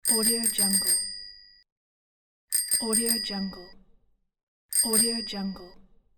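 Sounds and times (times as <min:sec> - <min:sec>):
bicycle bell: 0:00.0 - 0:01.7, 0:02.5 - 0:03.7, 0:04.7 - 0:05.8.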